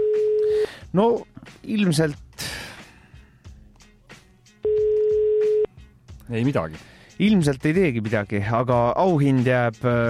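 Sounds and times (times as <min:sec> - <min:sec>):
outgoing phone call ringback tone: 0:00.0 - 0:00.6, 0:04.6 - 0:05.7
speech: 0:00.9 - 0:02.2, 0:06.3 - 0:10.0.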